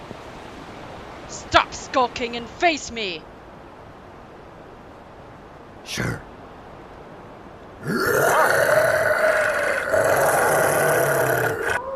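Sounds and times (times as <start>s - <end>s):
speech: 1.3s - 3.3s, 6.0s - 6.3s
loud rough animal roar: 7.8s - 11.8s.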